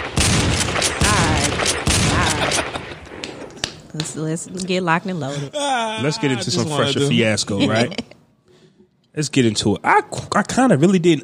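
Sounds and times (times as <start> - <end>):
heavy gunshot blasts: 0.0 - 3.5
rapid crackling gunshots: 0.0 - 3.9
laughter: 1.1 - 3.7, 4.4 - 8.2
speech: 4.0 - 8.2, 9.2 - 11.2.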